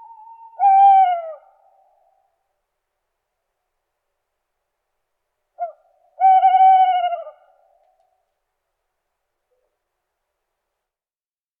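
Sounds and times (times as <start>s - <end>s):
owl hooting: 0.0s - 2.0s, 5.6s - 7.8s.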